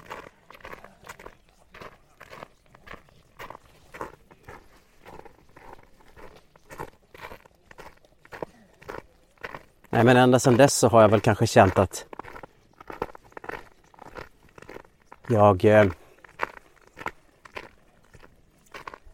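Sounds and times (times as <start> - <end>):
footsteps walking off the path into a forest: 0.0 - 19.1
speech: 10.0 - 12.1, 15.3 - 16.0.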